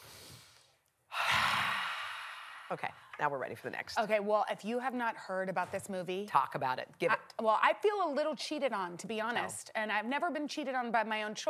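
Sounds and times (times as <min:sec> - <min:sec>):
deep cleansing breath exhale: 0:00.0 - 0:02.8
speech: 0:02.7 - 0:11.4.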